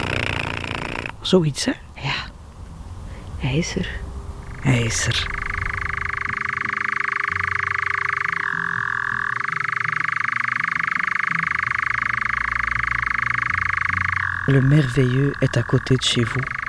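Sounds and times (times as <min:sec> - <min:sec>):
low rumble: 0:01.1 - 0:16.6
speech: 0:01.2 - 0:02.3, 0:03.4 - 0:05.4, 0:14.5 - 0:16.6
European nightjar churring: 0:04.4 - 0:16.6.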